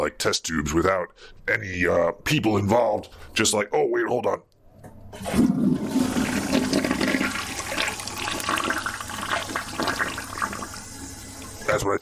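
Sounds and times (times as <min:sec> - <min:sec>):
speech: 0:00.0 - 0:04.5, 0:05.1 - 0:06.1, 0:11.8 - 0:12.0
toilet flushing: 0:05.2 - 0:11.8.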